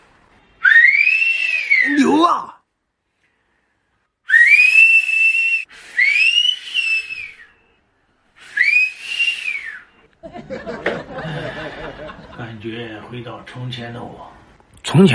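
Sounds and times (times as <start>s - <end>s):
man whistling a rising-then-falling wolf whistle catcall: 0.6s - 2.1s, 4.3s - 7.7s, 8.4s - 10.0s
chuckling and laughter: 10.2s - 12.5s
speech: 12.6s - 15.1s.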